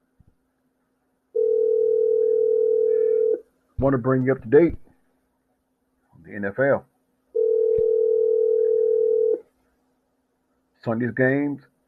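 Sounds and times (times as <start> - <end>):
telephone line tone while a call is placed: 1.4 - 3.4, 7.4 - 9.4
speech: 3.8 - 4.8, 6.3 - 6.9, 10.8 - 11.8.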